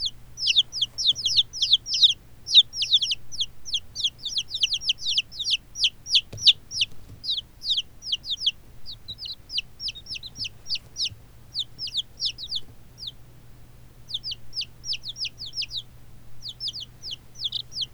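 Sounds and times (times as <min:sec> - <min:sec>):
chicks cheeping: 0:00.0 - 0:17.9.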